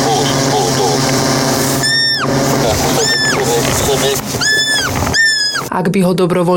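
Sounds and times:
laughter: 0.0 - 1.4, 2.2 - 5.0
steady outdoor noise: 0.0 - 6.5
roe deer fawn squeaking in tall meadow grass: 1.7 - 5.7
speech: 5.8 - 6.5.

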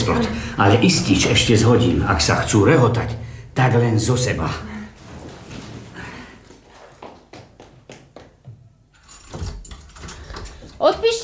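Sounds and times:
speech: 0.0 - 4.7
changing-room keys jangling and clinking: 9.0 - 11.2.

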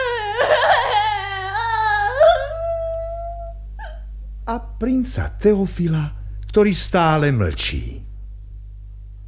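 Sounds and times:
princess crying and sobbing: 0.0 - 4.1
speech: 4.5 - 8.1.

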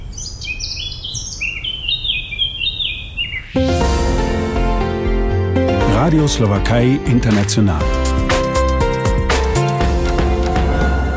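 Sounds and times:
birds chirping and trilling: 0.0 - 3.8
loud broadband musical tone: 3.6 - 11.1
speech: 6.1 - 8.0.

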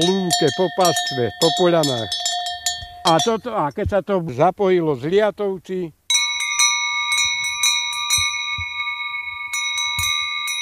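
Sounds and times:
speech: 0.0 - 2.3, 3.1 - 6.0
large sheet-metal sheep bells on grown sheep in a meadow pasture: 0.0 - 3.7, 6.1 - 10.5.

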